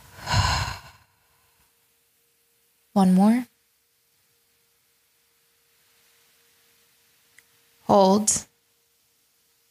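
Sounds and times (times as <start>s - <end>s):
person breathing in and exhaling during a breathing exercise: 0.0s - 1.6s
speech: 3.0s - 3.5s, 7.9s - 8.5s.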